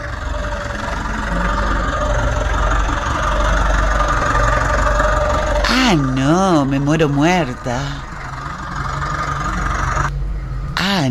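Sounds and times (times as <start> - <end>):
engine running: 0.0 - 11.1
speech: 5.9 - 8.0, 10.9 - 11.1.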